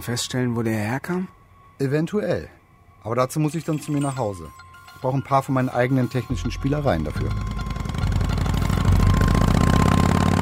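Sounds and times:
speech: 0:00.0 - 0:07.5
constant tone: 0:00.0 - 0:10.4
car engine hum while driving along a city road: 0:06.4 - 0:10.4.

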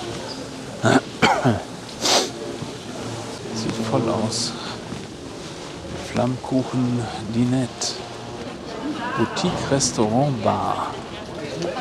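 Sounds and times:
steady hum: 0:00.0 - 0:11.6
speech: 0:00.8 - 0:01.7, 0:03.9 - 0:04.7, 0:06.2 - 0:08.1, 0:09.2 - 0:11.0
people coughing in a busy public street lined with cafés: 0:00.8 - 0:02.4.

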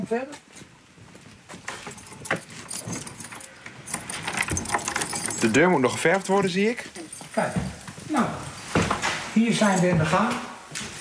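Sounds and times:
speech: 0:00.1 - 0:00.7, 0:05.4 - 0:08.4, 0:09.4 - 0:10.5
keys jangling and clinking: 0:01.7 - 0:07.9, 0:09.5 - 0:10.0
security gate being unlocked and opened at a home under renovation: 0:01.9 - 0:06.7.

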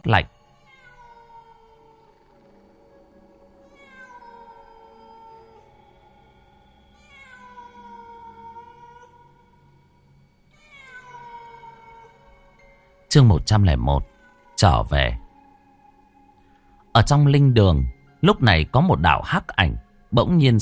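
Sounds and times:
speech: 0:00.0 - 0:00.3, 0:13.1 - 0:15.2, 0:17.0 - 0:20.5
cats yowling mournfully: 0:00.2 - 0:12.6, 0:14.0 - 0:15.4.

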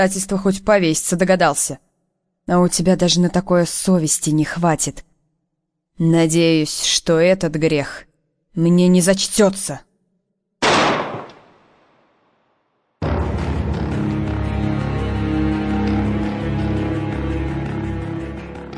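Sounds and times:
speech: 0:00.0 - 0:01.9, 0:02.5 - 0:05.1, 0:06.0 - 0:09.9
gunshot: 0:10.6 - 0:12.1
sustained musical passage: 0:13.0 - 0:18.7.

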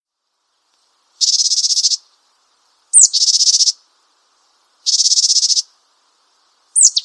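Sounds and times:
Japanese tit harsh pulsed buzzing calls: 0:01.2 - 0:02.1, 0:02.9 - 0:03.8, 0:04.8 - 0:05.7, 0:06.8 - 0:07.0.

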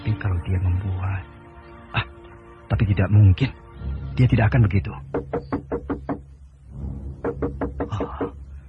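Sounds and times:
speech: 0:00.1 - 0:01.3, 0:02.7 - 0:05.7
knocking on a door at midnight: 0:05.1 - 0:06.3, 0:07.2 - 0:08.4.

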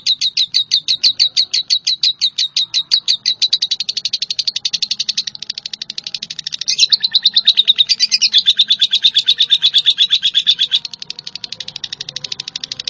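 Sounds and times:
Java sparrow singing clipped metallic chirps: 0:00.0 - 0:12.8.

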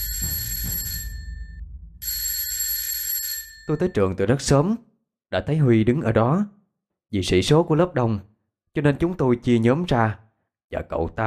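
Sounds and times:
alarm clock ringing: 0:00.0 - 0:04.0
speech: 0:03.7 - 0:11.2.

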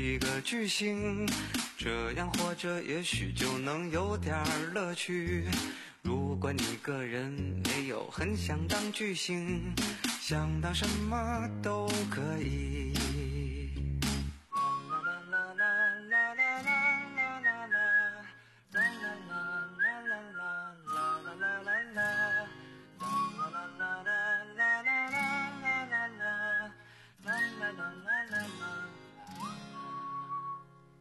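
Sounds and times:
speech: 0:00.0 - 0:13.2
whistled melody in a light bouncy pop song: 0:04.4 - 0:05.7, 0:14.5 - 0:30.9.

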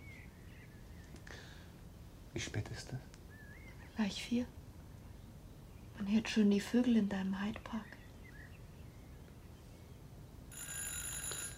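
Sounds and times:
speech: 0:02.3 - 0:03.2, 0:04.0 - 0:04.6, 0:06.0 - 0:08.0
telephone ringing late at night: 0:10.5 - 0:11.5.

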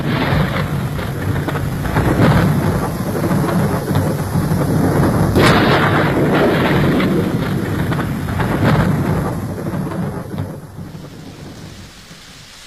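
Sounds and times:
low thunder rumbling, radio drama thunderstorm effect: 0:00.0 - 0:12.6
pouring rain, radio drama thunderstorm effect: 0:00.0 - 0:12.6.

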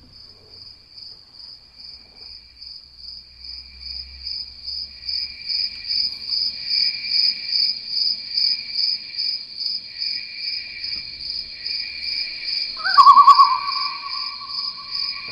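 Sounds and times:
crickets and other night insects chirping in a garden: 0:00.1 - 0:15.3
brief louder call: 0:12.8 - 0:15.3.

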